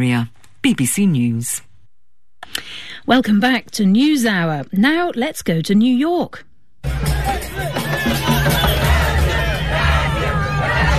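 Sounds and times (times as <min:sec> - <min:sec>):
speech: 0:00.0 - 0:01.7, 0:02.4 - 0:06.5
crowd of football fans chattering and shouting in Times Square: 0:06.8 - 0:10.9.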